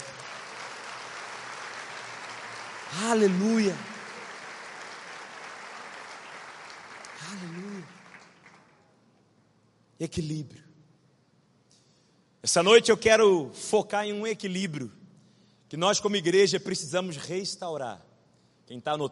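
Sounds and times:
large crowd applauding: 0:00.0 - 0:08.9
speech: 0:02.9 - 0:03.9, 0:10.0 - 0:10.7, 0:12.4 - 0:15.0, 0:15.7 - 0:18.1, 0:18.7 - 0:19.1.

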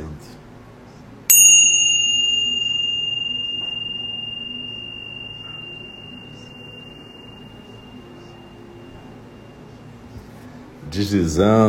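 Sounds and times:
meditation bell ringing: 0:01.3 - 0:10.1
speech: 0:10.9 - 0:11.6.

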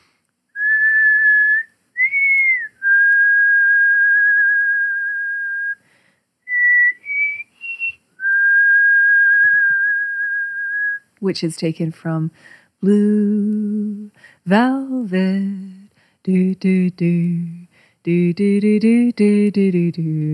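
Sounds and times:
human whistling a slow melody: 0:00.6 - 0:05.8, 0:06.5 - 0:11.0
speech: 0:11.2 - 0:15.6, 0:16.2 - 0:20.3.

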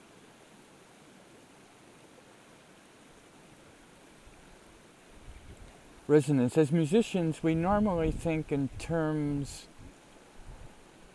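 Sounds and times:
flowing water rushing: 0:00.0 - 0:11.1
speech: 0:06.1 - 0:09.7.

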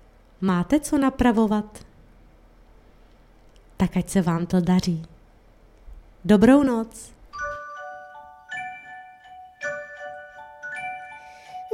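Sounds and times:
speech: 0:00.4 - 0:01.9, 0:03.8 - 0:05.2, 0:06.2 - 0:07.2
small bells chiming a tinkling melody: 0:07.4 - 0:11.7.

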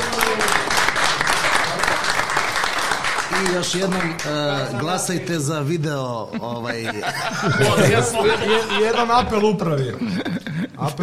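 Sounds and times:
audience applause: 0:00.0 - 0:05.2
speech: 0:03.4 - 0:11.0
laughter: 0:06.0 - 0:11.0.

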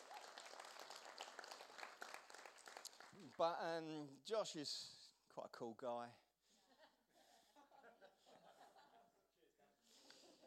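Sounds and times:
crowd applauding: 0:00.0 - 0:03.6
speech: 0:03.2 - 0:06.2.

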